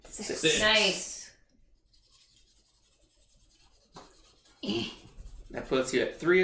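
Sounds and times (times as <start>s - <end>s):
speech: 0.2s - 1.1s, 5.5s - 6.4s
pencil writing on paper: 1.8s - 6.3s.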